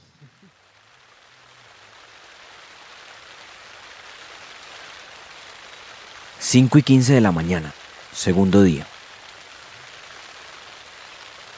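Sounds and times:
steady rain pattering on taut tent fabric in the páramo: 0:00.0 - 0:11.5
speech: 0:06.4 - 0:08.9.

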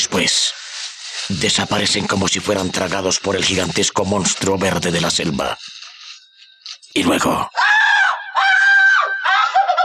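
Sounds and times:
speech: 0:00.1 - 0:00.6, 0:01.3 - 0:05.7, 0:06.9 - 0:07.6
jungle bird screaming and cackling: 0:07.6 - 0:09.7.

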